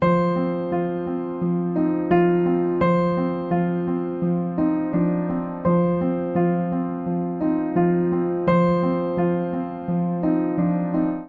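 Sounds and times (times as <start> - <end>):
upright piano ostinato in F Dorian: 0.0 - 11.2.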